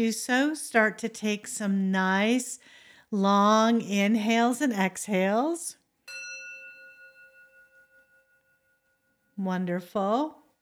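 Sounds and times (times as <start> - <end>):
speech: 0.0 - 5.8, 9.4 - 10.4
meditation bell struck and ringing: 6.0 - 9.4.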